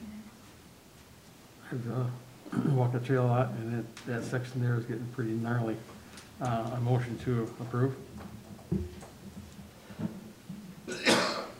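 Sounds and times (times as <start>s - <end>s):
speech: 1.7s - 8.9s
person sneezing: 10.9s - 11.5s.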